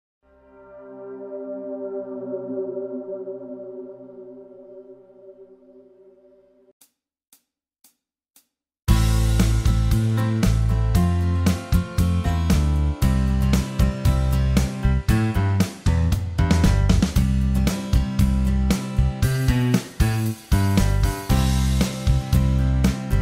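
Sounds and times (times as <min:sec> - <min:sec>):
guitar backing track: 0:08.9 - 0:23.2.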